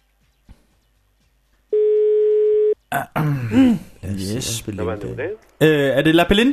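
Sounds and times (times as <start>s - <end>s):
telephone ringing tone while calling a pizzeria: 1.8s - 2.8s
speech: 2.9s - 6.5s.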